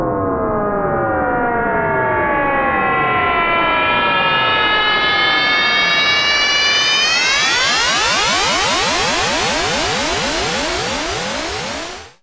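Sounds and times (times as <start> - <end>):
long sweeps: 0.2 - 12.2.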